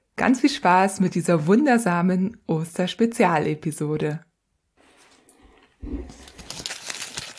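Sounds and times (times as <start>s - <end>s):
speech: 0.2s - 4.3s
foil wrapper of an Easter egg crinkling while being unwrapped: 6.0s - 7.3s.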